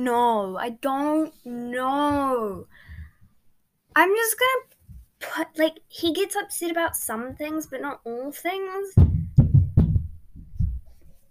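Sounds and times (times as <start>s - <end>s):
speech: 0.0s - 2.9s, 4.0s - 9.2s
feet stamping on a floor: 9.0s - 11.1s.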